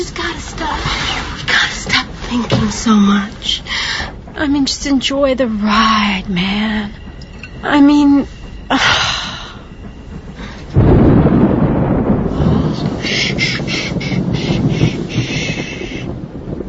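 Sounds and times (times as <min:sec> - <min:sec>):
speech: 0:00.0 - 0:07.0, 0:07.6 - 0:09.0
crackly texture: 0:00.0 - 0:16.6
soft wind-like hiss: 0:00.0 - 0:16.6
thunder rumbling in a thunderstorm: 0:00.0 - 0:16.6.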